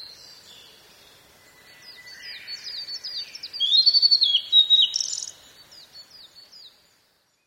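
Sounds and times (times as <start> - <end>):
blue-and-white flycatcher singing: 0.0 - 6.8.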